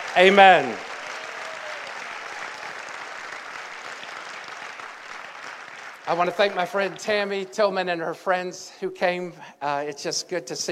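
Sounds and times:
crowd clapping before a sermon: 0.0s - 7.6s
speech: 0.2s - 0.9s, 6.1s - 10.7s.

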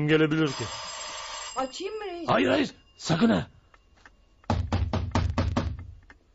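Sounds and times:
speech: 0.0s - 0.9s, 1.6s - 3.6s
loud heavy knocks on a door: 4.5s - 5.9s.

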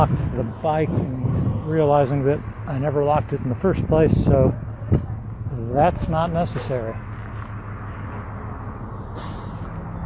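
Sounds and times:
speech: 0.0s - 7.1s
busy street traffic outside a school: 0.0s - 10.0s
vehicle air brake hiss: 9.1s - 9.8s.

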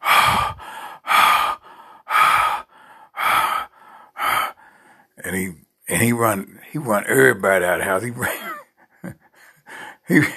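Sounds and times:
person imitating hard, heavy breathing with harsh gasping inhales: 0.0s - 4.7s
speech: 5.2s - 8.5s, 10.1s - 10.3s.

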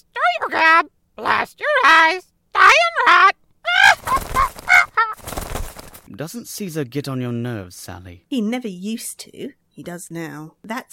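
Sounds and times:
parrot squawking: 0.2s - 5.9s
speech: 0.5s - 3.4s, 6.2s - 10.9s.

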